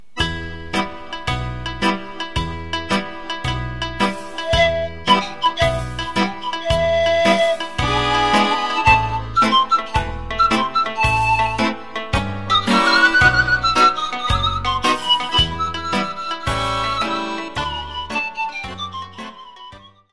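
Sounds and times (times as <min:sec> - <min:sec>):
old Romanian song: 0:00.0 - 0:20.1.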